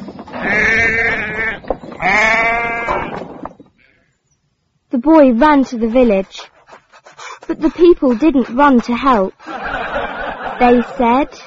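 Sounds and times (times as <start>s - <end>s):
sheep bleating in a field: 0.4s - 3.2s, 3.8s - 4.1s
speech: 5.0s - 6.5s, 7.5s - 9.5s, 10.6s - 11.4s
laughter: 6.6s - 11.4s.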